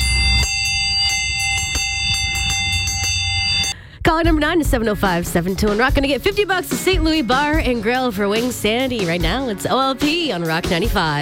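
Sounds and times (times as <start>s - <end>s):
handbell dinner bell ringing: 0.0s - 3.8s
speech: 4.2s - 11.2s.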